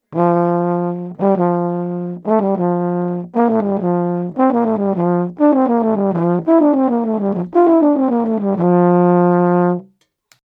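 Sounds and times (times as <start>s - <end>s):
flugabone playing a descending F major scale exercise: 0.1s - 9.8s.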